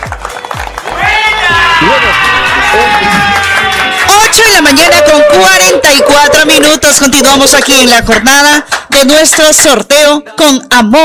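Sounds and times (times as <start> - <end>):
audience applause at a cooperative prize draw: 0.0 - 6.8
cheering voices and shouts: 0.3 - 6.9
speech: 4.6 - 11.0.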